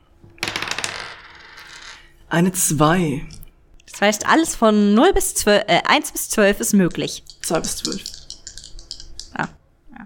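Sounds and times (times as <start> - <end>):
dice rattling across a hard tabletop: 0.4 - 2.1, 7.0 - 9.4
speech: 2.3 - 3.4, 4.0 - 8.1, 9.4 - 10.0.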